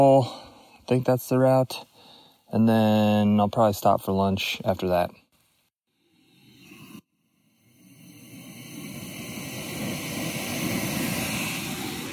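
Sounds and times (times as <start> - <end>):
speech: 0.0 - 1.9, 2.5 - 5.2
camping stove burner roaring: 6.3 - 12.1.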